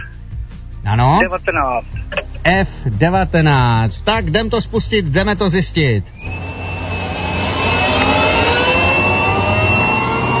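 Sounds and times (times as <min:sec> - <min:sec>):
speech: 0:00.8 - 0:06.4
jet airplane engines roaring during takeoff: 0:06.2 - 0:10.3.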